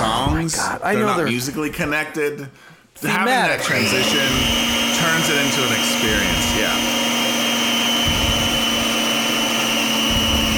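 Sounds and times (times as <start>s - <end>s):
speech: 0.5s - 7.0s
electric mixer whirring while making scone dough: 3.5s - 10.5s.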